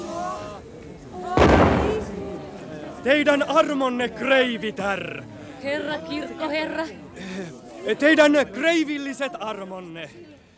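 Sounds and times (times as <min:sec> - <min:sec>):
old cannon fired in salute: 0:01.4 - 0:02.5
speech: 0:03.0 - 0:10.4.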